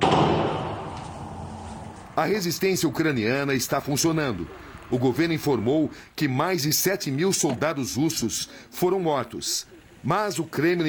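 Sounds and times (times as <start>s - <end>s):
gunshot in Kherson: 0.0s - 1.9s
speech: 2.2s - 10.8s.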